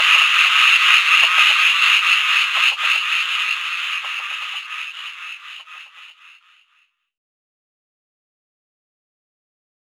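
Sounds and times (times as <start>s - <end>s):
Butler's narrow-mouthed frog Microhyla butleri rattling call: 0.0s - 6.7s.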